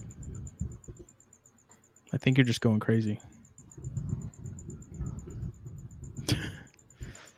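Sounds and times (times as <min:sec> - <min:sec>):
low rumble: 0:00.0 - 0:01.1, 0:03.4 - 0:07.2
crickets chirping: 0:00.0 - 0:07.3
speech: 0:02.1 - 0:03.3.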